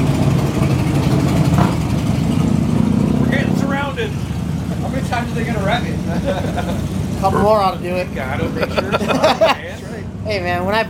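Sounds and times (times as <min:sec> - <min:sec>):
motorcycles riding past with a low engine rumble: 0:00.0 - 0:10.8
speech: 0:04.9 - 0:10.8
laughter: 0:05.9 - 0:07.6, 0:08.2 - 0:10.0.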